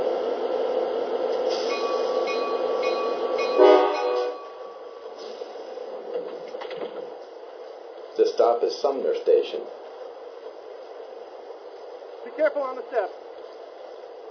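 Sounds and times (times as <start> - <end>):
commuter train rumbling along the rails: 0.0 - 14.2
commuter train horn blast: 3.6 - 4.5
speech: 8.4 - 9.8, 12.4 - 13.2.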